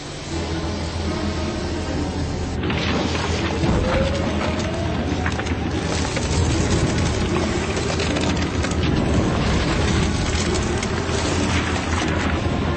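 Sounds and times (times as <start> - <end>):
heavy submarine engines rumbling at full ahead: 0.0 - 12.7
ice crunching and scraping as submarine rams through: 2.6 - 12.4.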